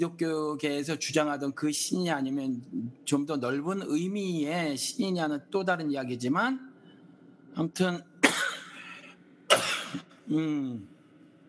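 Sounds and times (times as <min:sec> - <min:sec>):
speech: 0:00.0 - 0:06.7, 0:07.6 - 0:08.1, 0:09.9 - 0:11.0
person coughing harshly: 0:08.2 - 0:10.8.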